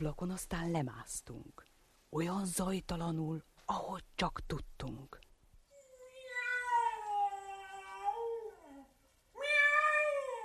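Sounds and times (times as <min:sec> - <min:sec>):
speech: 0:00.0 - 0:05.2
cat meowing: 0:06.0 - 0:08.6, 0:09.4 - 0:10.4.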